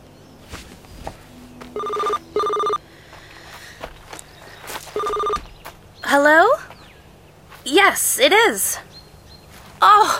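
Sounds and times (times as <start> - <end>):
footsteps shuffling as people walk to a car: 0.4 - 8.1, 9.4 - 10.1
mobile phone ringing with two-tone electronic bursts: 1.8 - 2.8, 4.9 - 5.5
speech: 6.1 - 6.7, 7.7 - 8.9, 9.8 - 10.1.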